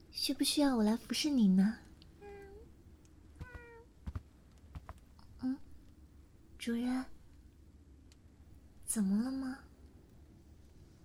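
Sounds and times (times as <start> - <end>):
speech: 0.2 - 1.9, 6.6 - 7.2, 8.9 - 9.7
cat meowing at home: 2.2 - 2.6, 3.4 - 3.9
soft taps: 3.4 - 5.0.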